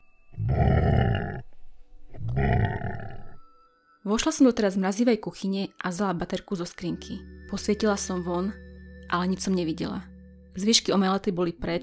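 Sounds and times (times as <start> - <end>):
loud guttural animal roars from the yard: 0.4 - 1.5, 2.2 - 3.4
speech: 4.1 - 11.8.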